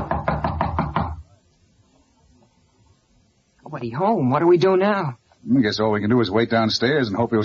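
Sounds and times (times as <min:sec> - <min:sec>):
knocking on the door of a room at the end of a hall: 0:00.0 - 0:01.3
speech: 0:03.8 - 0:07.4.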